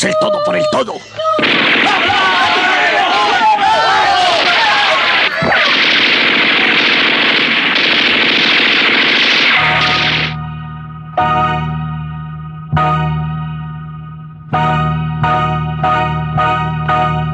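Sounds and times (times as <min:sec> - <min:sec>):
speech: 0:00.0 - 0:01.8
machine-gun fire shot at point-blank range at guards: 0:01.4 - 0:10.4
sustained steady tones: 0:05.8 - 0:17.2.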